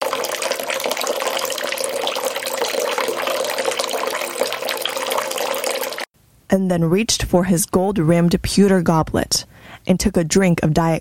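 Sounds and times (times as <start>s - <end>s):
hot water running from a tap: 0.0s - 6.1s
speech: 6.5s - 10.9s.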